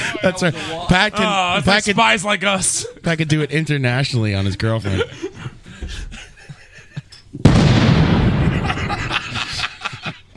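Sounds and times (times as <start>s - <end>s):
speech: 0.2s - 5.3s
laughter: 4.7s - 7.3s, 8.4s - 10.3s
sound-effect explosion of a meteor striking Russia: 7.4s - 9.5s.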